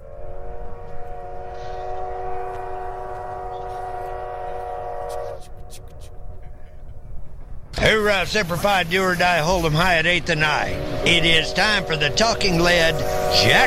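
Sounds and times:
loud sustained train whistle: 0.0s - 6.4s, 10.6s - 13.6s
low rumble of rolling railcars: 0.0s - 13.6s
speech: 7.8s - 13.6s.

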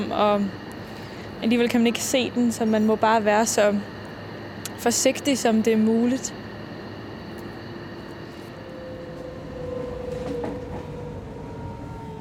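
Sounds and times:
speech: 0.0s - 0.6s, 1.4s - 4.0s, 4.8s - 6.4s
moving commuter train rumbling heard from inside: 0.0s - 12.2s
whining tonal hum of a commuter train: 0.0s - 12.2s.

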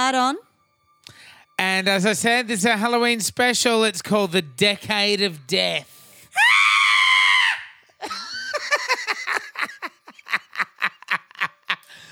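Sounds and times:
speech: 0.0s - 0.5s, 1.6s - 6.0s
man screaming in horror-movie style: 6.4s - 7.8s
man laughing in breathy rhythmic bursts: 8.0s - 11.9s.

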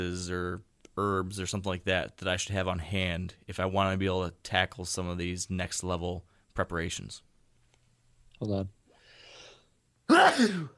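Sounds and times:
speech: 0.0s - 7.3s, 8.4s - 8.8s, 10.1s - 10.7s
sneeze: 10.1s - 10.7s.

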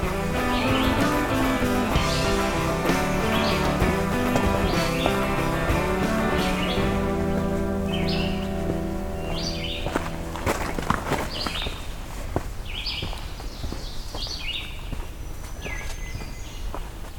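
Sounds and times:
dense steady background of sustained tonal sound: 0.0s - 12.9s
Black-throated Green Warbler singing along a hiking trail: 0.0s - 16.9s.

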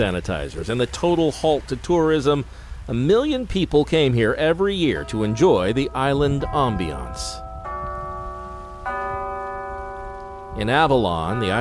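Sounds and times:
speech: 0.0s - 7.4s, 10.6s - 11.5s
century-old town chimes in an island town ringing the quarter hour: 4.9s - 11.5s.

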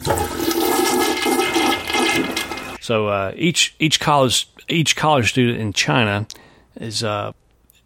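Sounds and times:
toilet flushing: 0.0s - 2.8s
speech: 2.9s - 7.4s.

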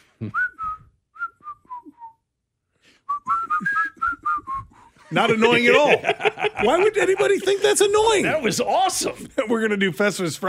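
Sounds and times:
speech: 0.2s - 0.5s, 5.1s - 10.4s
person whistling a simple melody: 0.2s - 2.3s, 3.0s - 4.9s
laughter: 5.0s - 9.6s.

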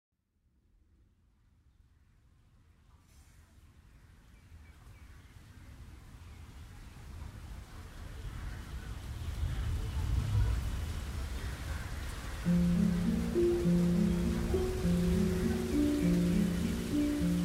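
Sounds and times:
steady rain hissing: 7.0s - 17.4s
speech: 12.5s - 12.8s
low sustained musical tones: 12.5s - 17.4s.

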